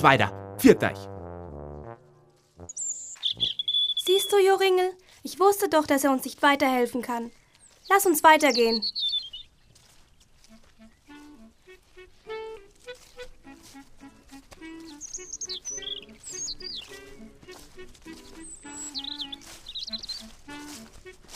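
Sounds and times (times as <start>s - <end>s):
speech: 0.0s - 1.1s, 4.1s - 9.0s
robin chirping and singing: 2.7s - 4.6s, 7.6s - 9.6s, 14.7s - 20.4s.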